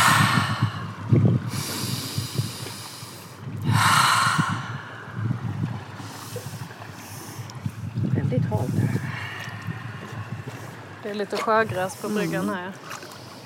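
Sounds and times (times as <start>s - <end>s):
heavy breathing while stepping into cold water: 0.0s - 5.2s, 8.6s - 10.9s
low rumbling background: 0.0s - 11.9s
speech: 11.1s - 13.0s.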